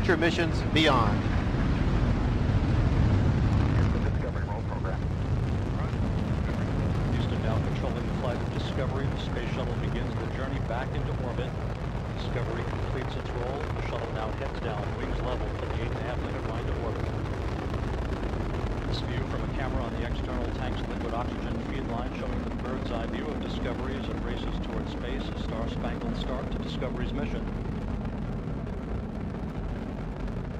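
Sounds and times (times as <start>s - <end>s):
Space Shuttle rocket engines roaring at liftoff: 0.0s - 30.5s
speech: 0.1s - 1.4s, 8.2s - 17.2s, 18.9s - 27.6s.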